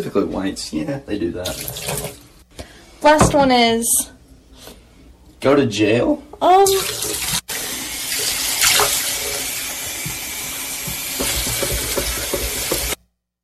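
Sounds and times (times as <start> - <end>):
speech: 0.0 - 2.2, 3.0 - 4.2, 5.4 - 7.3
cups of water poured into a sink: 1.4 - 2.2, 6.6 - 13.0.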